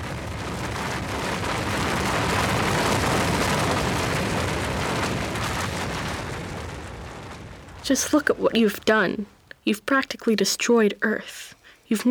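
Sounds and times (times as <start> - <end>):
earthquake rumbling roar sound effect: 0.0 - 9.1
speech: 7.9 - 12.0.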